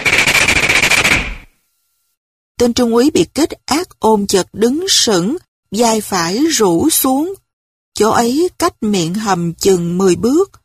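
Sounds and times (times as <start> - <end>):
Thompson submachine gun firing a rapid burst in an ambush: 0.0 - 1.5
speech: 2.6 - 7.4, 8.0 - 10.6.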